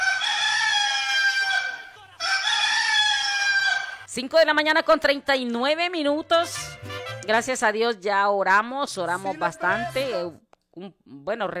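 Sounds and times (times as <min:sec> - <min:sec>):
rooster crowing: 0:00.0 - 0:04.1
speech: 0:04.2 - 0:11.5.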